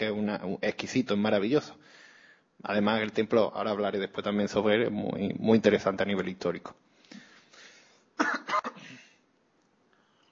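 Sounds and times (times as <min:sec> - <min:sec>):
speech: 0:00.0 - 0:02.0, 0:02.6 - 0:06.8, 0:08.2 - 0:08.6
person clearing a dry throat: 0:08.2 - 0:09.2
person coughing from a dry throat: 0:08.2 - 0:09.2.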